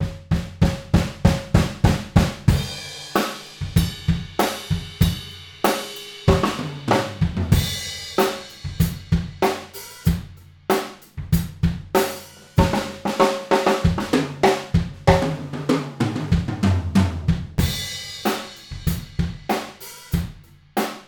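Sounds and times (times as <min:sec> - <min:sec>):
drum: 0:00.0 - 0:21.0.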